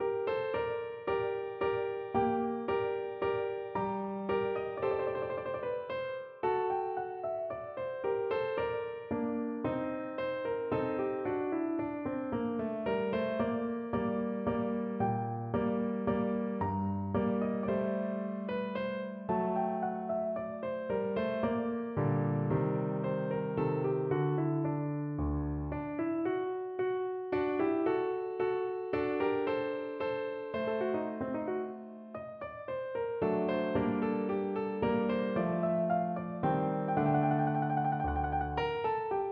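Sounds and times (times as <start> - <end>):
piano minuet: 0.0 - 39.3.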